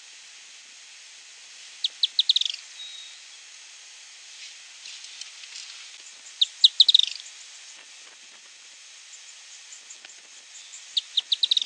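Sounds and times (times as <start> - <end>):
light background hiss: 0.0 - 11.6
firewood-gatherer Anumbius annumbi calling: 1.8 - 3.2, 6.0 - 7.4, 9.1 - 11.6.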